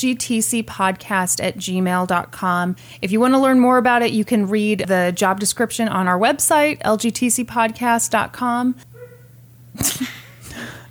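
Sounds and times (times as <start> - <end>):
speech: 0.0 - 8.9, 9.8 - 10.8
quiet steady hum: 0.0 - 10.8
small female dog barking: 8.9 - 9.3.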